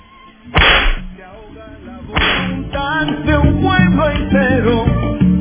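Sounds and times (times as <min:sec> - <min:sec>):
whip lashes as a sound effect: 0:00.5 - 0:01.2, 0:02.2 - 0:02.6
speech: 0:01.2 - 0:05.3.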